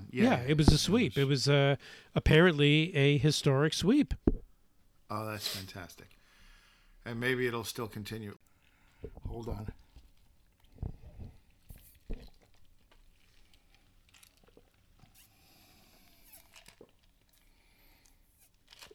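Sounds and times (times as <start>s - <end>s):
speech: 0.1s - 4.4s, 5.1s - 6.2s, 7.0s - 9.8s
person sipping a drink: 8.6s - 18.9s.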